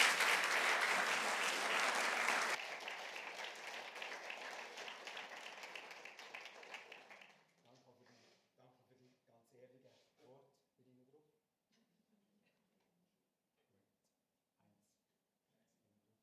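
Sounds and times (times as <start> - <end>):
audience applause: 0.0 - 7.4.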